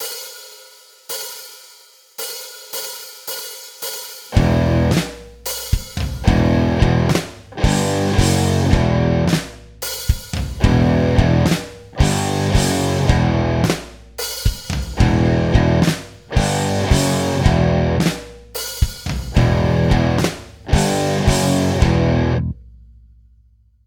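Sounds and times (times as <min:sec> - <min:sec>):
guitar power chord: 0:04.4 - 0:05.0, 0:06.2 - 0:09.4, 0:10.6 - 0:13.7, 0:15.0 - 0:18.1, 0:19.4 - 0:22.6.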